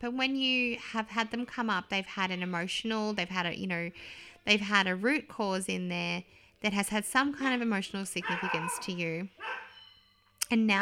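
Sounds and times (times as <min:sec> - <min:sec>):
speech: 0:00.0 - 0:09.6, 0:10.5 - 0:10.8
dog bark: 0:08.2 - 0:09.8.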